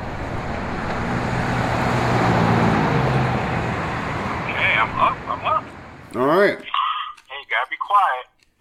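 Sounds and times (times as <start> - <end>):
car engine humming as car creeps forward in a queue: 0.0 - 6.5
steady road noise: 0.0 - 8.3
speech: 6.2 - 6.7.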